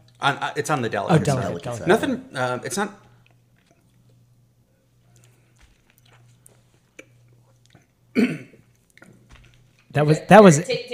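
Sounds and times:
speech: 0:00.2 - 0:03.0, 0:10.0 - 0:10.9
person coughing after sipping a spirit during a tasting: 0:08.1 - 0:08.7.

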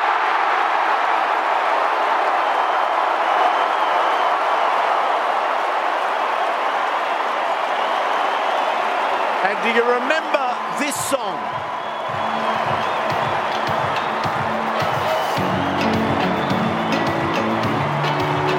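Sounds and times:
huge stadium crowd cheering and applauding at football match: 0:00.0 - 0:18.5
speech: 0:09.5 - 0:12.2.

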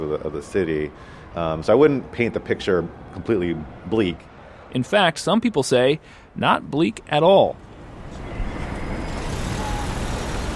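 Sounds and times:
dense city street traffic with cars trucks and buses: 0:00.0 - 0:10.5
speech: 0:00.2 - 0:07.7.

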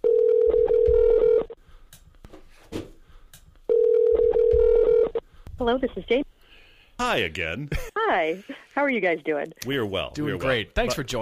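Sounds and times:
telephone ringback tone as a call is placed: 0:00.0 - 0:01.6, 0:03.7 - 0:05.2
speech: 0:05.6 - 0:06.2, 0:07.1 - 0:11.2.

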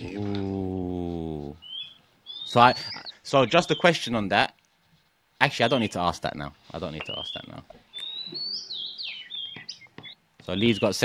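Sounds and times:
pet birds chirping and tweeting indoors: 0:00.0 - 0:04.6, 0:05.4 - 0:11.0
speech: 0:02.5 - 0:04.6, 0:05.4 - 0:08.6, 0:10.4 - 0:11.0.

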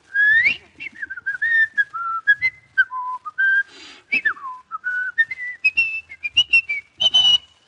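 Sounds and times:
person whistling a lively tune with quick notes, slides and trills: 0:00.1 - 0:07.6.

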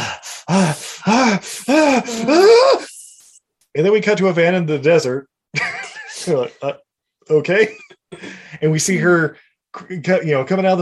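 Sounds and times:
voice imitating a woman panting heavily: 0:00.0 - 0:03.2
speech: 0:00.5 - 0:02.4, 0:03.8 - 0:05.3, 0:06.2 - 0:10.8.

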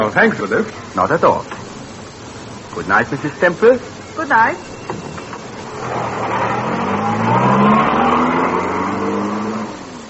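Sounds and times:
speech: 0:00.0 - 0:01.6, 0:02.8 - 0:05.1
car engine accelerating as it drives off: 0:04.8 - 0:10.0.

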